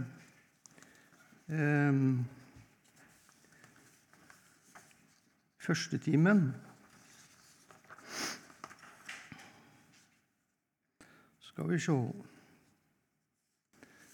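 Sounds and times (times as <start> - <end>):
speaker's papers rustling and shuffling: 0.0 - 1.5, 2.4 - 5.6, 6.5 - 10.3
speech: 1.5 - 2.4, 5.6 - 6.7, 11.6 - 12.3.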